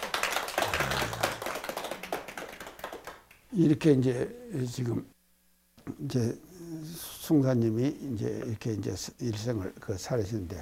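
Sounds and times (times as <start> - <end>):
audience clapping applause: 0.0 - 3.4
speech: 3.5 - 5.1, 5.9 - 10.5.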